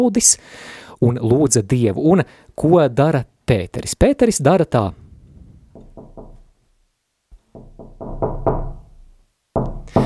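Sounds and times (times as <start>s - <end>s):
speech: 0.0s - 5.0s
knocking on a door: 5.7s - 6.5s, 7.5s - 10.0s.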